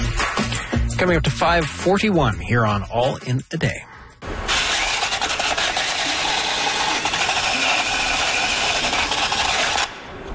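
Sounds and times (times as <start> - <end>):
speech: 1.0 - 3.9
power tool whirring cleaning a wheel rim after a tire change: 4.5 - 10.0.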